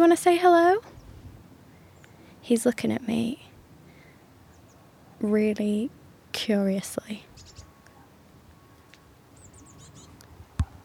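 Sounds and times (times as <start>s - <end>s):
speech: 0.1s - 0.9s, 2.4s - 3.5s, 5.2s - 7.3s
bird chirping high-pitched notes: 4.5s - 5.2s, 7.3s - 10.8s.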